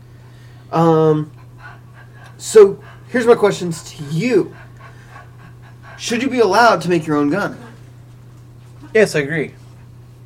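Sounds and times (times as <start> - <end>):
steady low hum: 0.0 - 10.2
speech: 0.7 - 1.4, 2.4 - 4.6, 6.0 - 7.7, 8.9 - 9.6
dog whimpering: 1.4 - 7.9.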